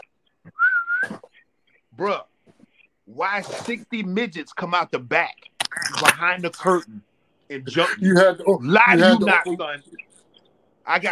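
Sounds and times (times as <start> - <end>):
sustained human whistle given as a signal: 0.5 - 1.2
speech: 2.0 - 2.3, 3.1 - 10.0, 10.9 - 11.1.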